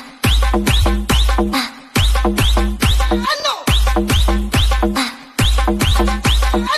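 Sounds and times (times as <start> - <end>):
whistle: 0.2 - 4.8, 5.4 - 6.7.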